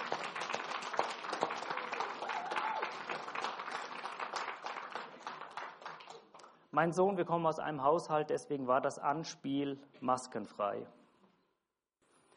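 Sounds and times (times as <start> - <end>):
audience applause: 0.0 - 6.4
speech: 6.8 - 11.0.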